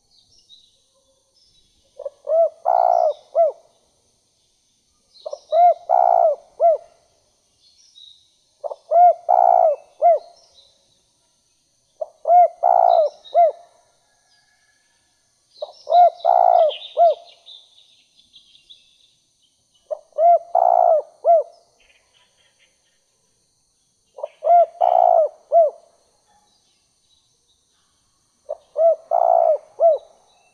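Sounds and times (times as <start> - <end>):
spotted dove calling: 2.0 - 3.6, 5.2 - 6.9, 8.6 - 10.3, 12.0 - 13.6, 15.6 - 17.3, 19.9 - 21.5, 24.2 - 25.8, 28.5 - 30.1.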